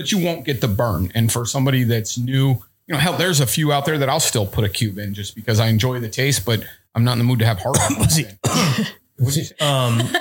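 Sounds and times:
speech: 0.0s - 10.1s
person coughing loud and throaty: 7.7s - 9.0s.

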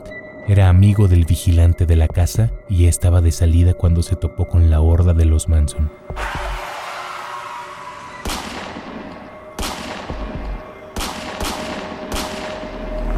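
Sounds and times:
speech: 0.5s - 6.6s
loud sharp gunshots fired through the window of a white Rambler car: 8.2s - 13.1s.

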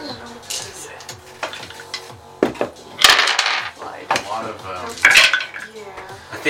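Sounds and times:
ten six-sided dice rattling across a hard surface: 3.0s - 3.8s.

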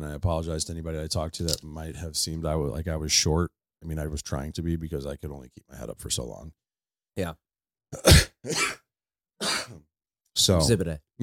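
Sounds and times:
speech: 0.1s - 6.6s, 7.2s - 8.8s, 9.7s - 11.2s
person coughing with a lingering cough after an illness: 8.0s - 8.8s, 9.4s - 9.8s.

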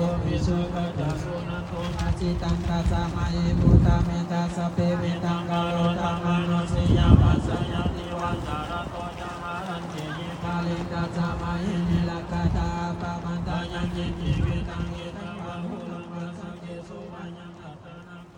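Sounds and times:
outdoor wind gusts rumbling across the microphone: 0.0s - 4.4s, 6.0s - 9.4s, 11.4s - 15.3s
row of seated monks reciting blessing chants at a Lao New Year celebration temple: 0.0s - 18.3s.

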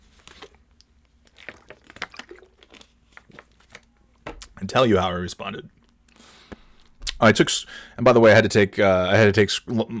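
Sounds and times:
person swallowing and gulping a swig of water: 0.2s - 4.6s
speech: 4.6s - 5.8s, 7.2s - 9.9s.

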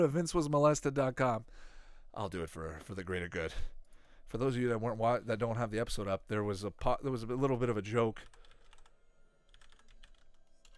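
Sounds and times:
speech: 0.0s - 8.4s
typing on a computer keyboard: 8.2s - 10.7s.

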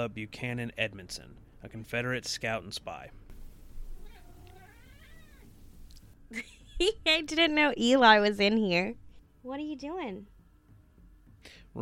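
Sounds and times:
speech: 0.0s - 3.2s, 6.3s - 10.3s, 11.4s - 11.7s
low steady hum: 0.0s - 11.2s
male cat meowing indoors: 3.8s - 5.6s.

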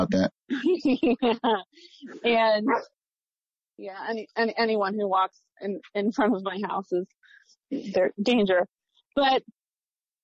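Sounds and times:
speech: 0.0s - 3.0s, 3.8s - 9.6s
dog barking: 2.6s - 2.9s
dog drawn-out whining bark: 2.7s - 2.9s.

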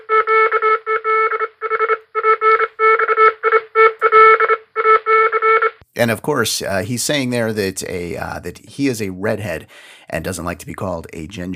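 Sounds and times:
loud Morse code telegraph beeps with buzzy keyed tone: 0.0s - 5.8s
speech: 6.0s - 11.5s.

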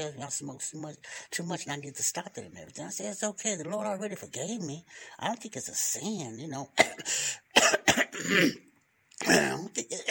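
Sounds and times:
speech: 0.0s - 10.0s
person clearing throat: 6.8s - 10.0s.

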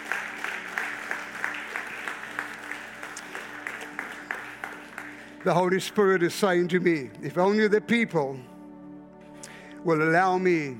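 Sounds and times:
church audience applauding: 0.0s - 6.4s
speech: 5.4s - 8.5s, 9.8s - 10.7s.

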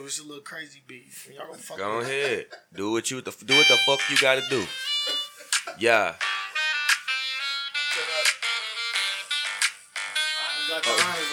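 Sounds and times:
speech: 0.1s - 4.9s, 5.8s - 6.4s
mobile phone ringing with a bright melodic ringtone: 3.5s - 5.6s, 6.2s - 11.3s.

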